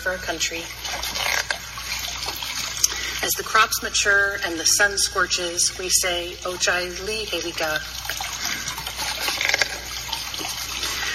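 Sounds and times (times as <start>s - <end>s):
speech: 0.0s - 1.5s, 3.2s - 8.3s
creek water splashing and gurgling as people wade: 0.0s - 11.1s.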